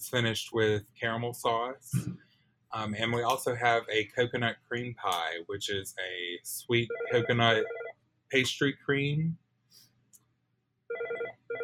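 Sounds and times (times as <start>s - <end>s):
speech: 0.0s - 9.8s
telephone ringing with warbling electronic burst: 6.9s - 7.9s, 10.9s - 11.6s.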